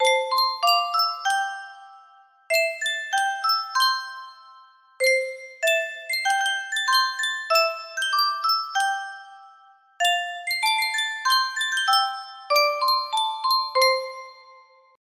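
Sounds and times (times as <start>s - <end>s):
music box melody: 0.0s - 15.0s.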